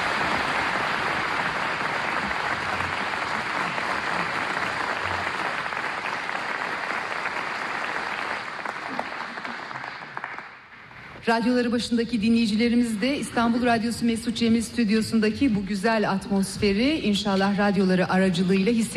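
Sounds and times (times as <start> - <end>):
studio audience applauding at a Turkish folk music radio programme in Istanbul: 0.0 - 11.1
speech: 11.3 - 18.9.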